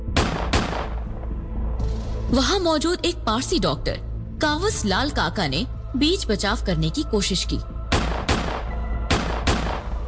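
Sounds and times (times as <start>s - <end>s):
gunshots fired at point-blank range: 0.1s - 1.1s, 7.9s - 9.9s
speech: 2.3s - 7.7s.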